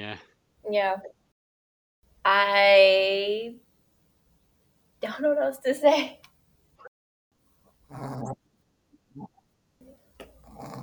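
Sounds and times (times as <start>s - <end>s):
speech: 0.0s - 1.2s, 2.2s - 3.6s, 5.0s - 6.3s
female dog snoring with pig-like snorts and grunts: 7.9s - 8.4s, 10.2s - 10.8s.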